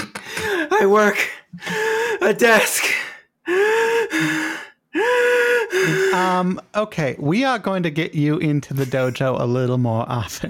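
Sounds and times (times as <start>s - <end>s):
heavy out-of-breath gasping breathing: 0.0s - 0.7s, 1.3s - 6.4s
speech: 0.8s - 10.4s.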